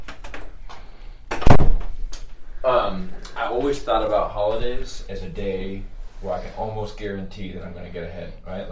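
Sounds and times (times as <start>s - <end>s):
door pushed shut with a rattle and thud: 1.3s - 2.0s
speech: 3.9s - 8.6s.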